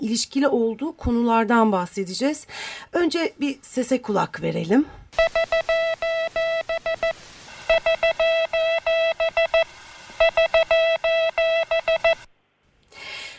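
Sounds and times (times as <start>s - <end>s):
speech: 0.0s - 5.9s
electronic tone keying Morse code: 5.2s - 12.3s.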